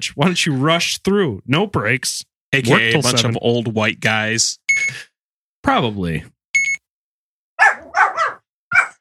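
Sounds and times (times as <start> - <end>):
speech: 0.0 - 6.4
short electronic beep: 6.6 - 6.8
dog barking: 7.6 - 9.0.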